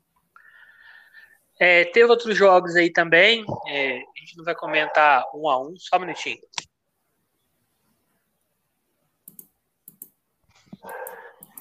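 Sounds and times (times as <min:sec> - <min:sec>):
speech: 0:01.6 - 0:06.6
dogs barking: 0:03.4 - 0:05.4, 0:10.8 - 0:11.4.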